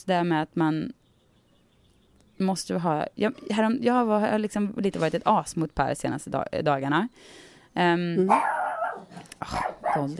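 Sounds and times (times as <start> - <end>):
speech: 0.0 - 1.0, 2.4 - 8.6, 9.4 - 10.1
dog barking: 8.3 - 10.1.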